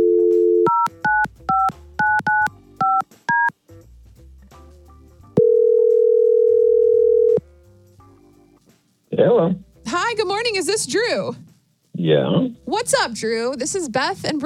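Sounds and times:
telephone touch-tone beeps: 0.0s - 3.5s
telephone dial tone: 5.4s - 7.4s
speech: 10.2s - 14.4s.

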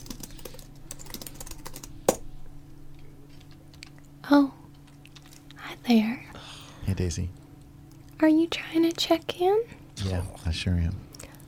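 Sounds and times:
typing on a computer keyboard running hotel reservation software at a check-in desk: 0.0s - 1.9s
steady low hum: 0.0s - 11.4s
speech: 4.3s - 4.6s, 5.9s - 6.2s, 6.9s - 7.4s, 8.2s - 11.1s.

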